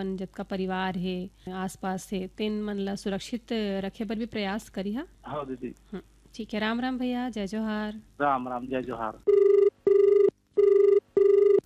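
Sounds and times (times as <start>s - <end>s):
speech: 0.0s - 9.4s
telephone ringing with an incoming call: 9.3s - 11.6s.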